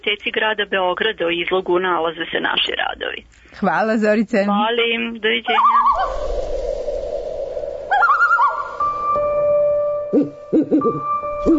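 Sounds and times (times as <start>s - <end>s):
speech: 0.0s - 6.6s, 10.1s - 11.5s
owl hooting: 5.5s - 11.5s
steady electronic tone: 5.8s - 10.5s.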